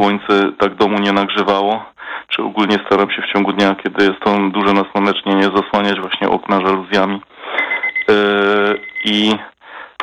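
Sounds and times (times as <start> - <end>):
speech: 0.0 - 9.5
tea brewing timer alarm buzzy electronic beeps: 7.5 - 9.2.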